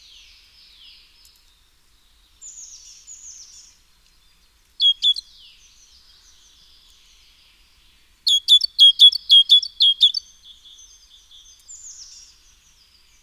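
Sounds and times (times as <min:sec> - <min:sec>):
great tit Parus major song: 0:04.8 - 0:05.4, 0:08.2 - 0:12.5.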